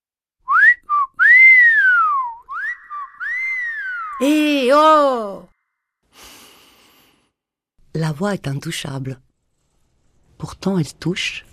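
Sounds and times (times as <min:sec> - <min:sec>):
person whistling a short clear tune: 0:00.5 - 0:04.3
speech: 0:04.2 - 0:05.5, 0:08.0 - 0:09.2, 0:10.4 - 0:11.5.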